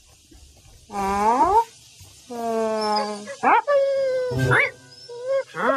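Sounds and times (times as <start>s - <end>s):
speech: 0.9s - 1.4s
dog whimpering: 2.7s - 5.6s.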